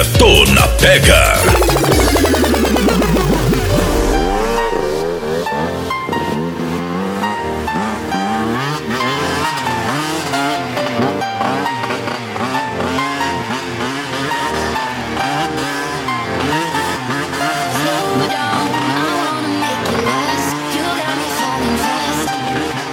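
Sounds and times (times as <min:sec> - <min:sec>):
speech: 0:00.1 - 0:01.8
race car engines revving and roaring: 0:01.4 - 0:22.9
race car tires squealing: 0:05.2 - 0:22.9.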